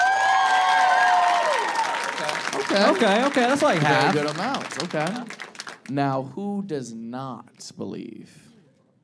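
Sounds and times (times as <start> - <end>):
several audience voices whooping and cheering: 0.0 - 3.2
audience crowd clapping: 0.0 - 6.1
speech: 2.7 - 8.4.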